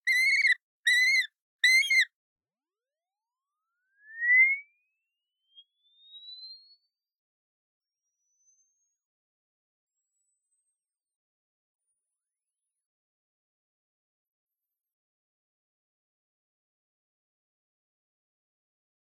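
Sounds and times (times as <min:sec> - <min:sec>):
yellow-billed kite chirping: 0:00.0 - 0:02.1.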